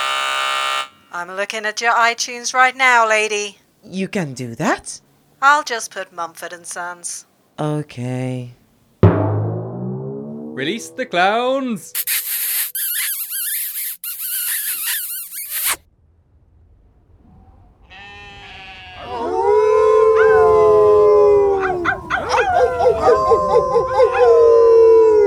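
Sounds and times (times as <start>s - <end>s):
harsh broadband noise: 0.0s - 2.6s
speech: 1.2s - 8.6s, 10.6s - 12.6s
several voices howling together in wavering wails: 19.0s - 25.2s.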